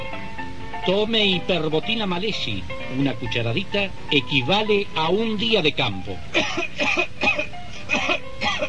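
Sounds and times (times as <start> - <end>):
speech: 0.9 - 7.2
rasping coughs: 6.3 - 8.6.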